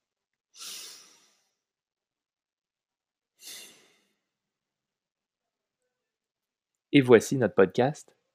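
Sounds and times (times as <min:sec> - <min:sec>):
deep breath taken together: 0:00.6 - 0:01.7, 0:03.4 - 0:04.4
speech: 0:06.9 - 0:08.2.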